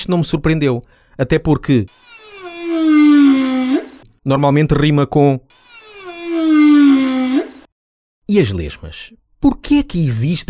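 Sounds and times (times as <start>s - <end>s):
speech: 0.0s - 2.1s, 4.2s - 5.6s, 8.3s - 10.4s
long mournful whale call: 1.9s - 4.0s, 5.5s - 7.7s.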